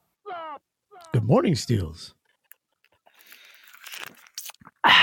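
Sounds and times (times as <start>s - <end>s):
speech: 1.1s - 2.2s
person slurping a drink from a tumbler cup: 3.0s - 4.9s.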